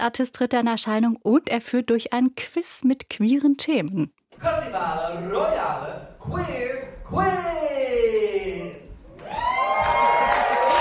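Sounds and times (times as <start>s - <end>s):
speech: 0.0s - 8.5s
enthusiastic theatre audience at a queer-themed quiz show in Berlin cheering and whooping: 9.1s - 10.7s.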